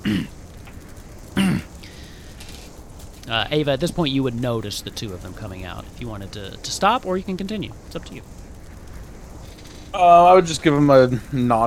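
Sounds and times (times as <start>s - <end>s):
person clearing throat: 0.0s - 0.3s, 1.4s - 1.7s
speech: 3.3s - 8.4s, 10.0s - 11.6s.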